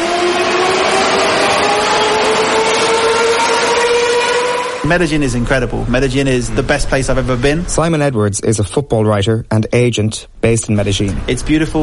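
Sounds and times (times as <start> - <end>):
metro train running on rails in Medellín Colombia: 0.0 - 7.5
speech: 4.9 - 11.8.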